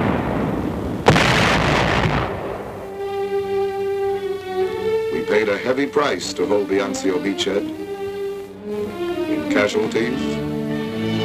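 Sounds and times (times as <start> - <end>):
artillery barrage explosions at the Anzio beachhead during German attacks: 0.0 - 3.1
rumbling broadband noise: 0.0 - 11.2
steady sustained tone: 2.6 - 11.2
speech: 5.5 - 7.8, 9.5 - 10.4.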